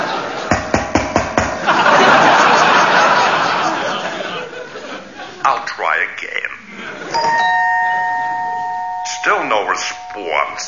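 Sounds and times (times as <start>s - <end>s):
laughter: 0.0s - 0.5s, 1.6s - 5.7s, 6.6s - 8.5s
doorbell chiming: 7.1s - 10.6s.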